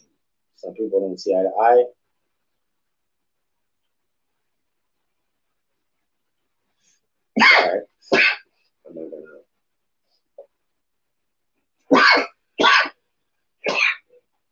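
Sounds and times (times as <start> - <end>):
speech: 0.6 - 2.0
person sneezing: 7.4 - 8.5, 11.9 - 13.0, 13.6 - 14.1.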